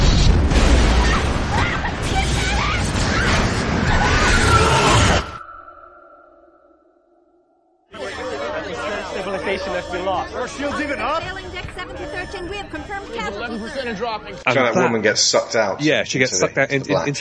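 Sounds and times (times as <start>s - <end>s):
movie explosions and rumbling in a space battle: 0.0s - 5.4s
faint tone: 5.3s - 14.0s
busy noise and chattering voices: 7.9s - 17.1s
speech: 9.5s - 17.1s.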